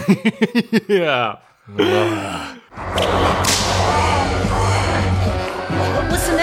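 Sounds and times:
speech: 0.1 - 4.3
brief tonal cry: 1.7 - 5.5
whip-crack sound effect: 3.0 - 3.9.

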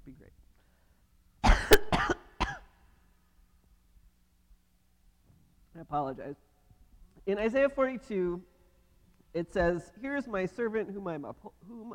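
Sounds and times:
harsh raspy coughing: 1.4 - 2.8
speech: 5.8 - 6.5, 7.2 - 8.5, 9.3 - 11.9.

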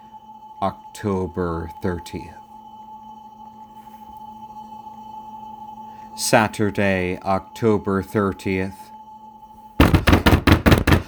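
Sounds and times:
speech: 0.6 - 2.4, 6.2 - 8.8
loud knocking: 9.8 - 11.0.

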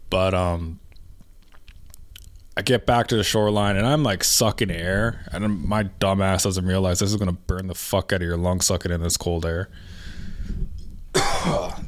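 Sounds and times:
speech: 0.1 - 0.8, 2.6 - 10.6, 11.4 - 11.8
harsh raspy cough: 11.1 - 11.8.

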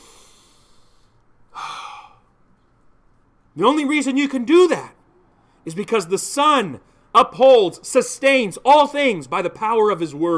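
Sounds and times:
person taking a breath: 0.0 - 2.3
speech: 3.6 - 5.0, 5.6 - 10.3.

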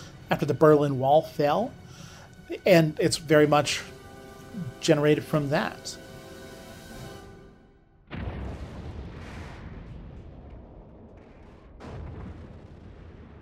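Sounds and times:
speech: 0.3 - 1.8, 2.5 - 4.0, 4.6 - 6.0
quiet humming tone: 3.7 - 8.0
loud explosion with deep rumbling: 8.0 - 13.4.

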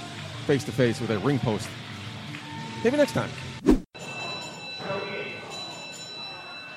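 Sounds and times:
loud noisy wrestling crowd: 0.0 - 6.7
speech: 0.5 - 1.9, 2.8 - 3.8
wrestling ring bell clanging to start a match: 4.0 - 6.7.

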